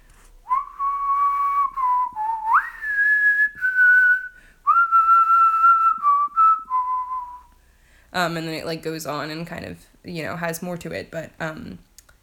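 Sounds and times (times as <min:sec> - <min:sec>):
person whistling a movie theme tune: 0:00.5 - 0:07.5
speech: 0:08.2 - 0:11.9.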